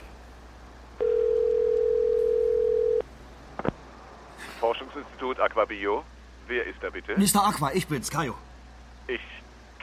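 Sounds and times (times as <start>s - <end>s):
telephone dial tone while a call is placed: 1.0s - 3.0s
speech: 5.2s - 8.5s, 9.1s - 9.3s.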